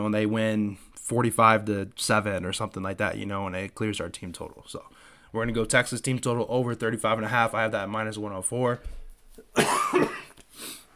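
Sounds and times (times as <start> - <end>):
speech: 0.0 - 10.8
person coughing: 9.5 - 10.4.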